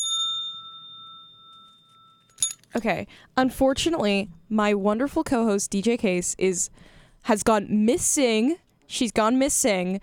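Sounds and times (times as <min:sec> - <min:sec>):
single bell struck once: 0:00.0 - 0:02.8
speech: 0:02.8 - 0:10.0.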